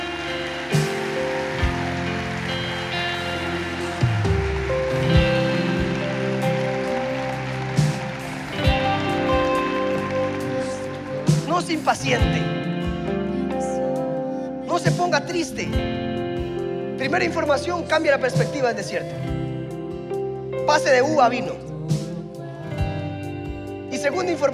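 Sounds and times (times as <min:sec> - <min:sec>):
audience applause: 0:00.0 - 0:12.0
sustained keyboard chords: 0:00.0 - 0:24.5
speech: 0:11.7 - 0:12.6, 0:14.8 - 0:16.0, 0:17.0 - 0:19.3, 0:20.7 - 0:21.7, 0:24.0 - 0:24.5.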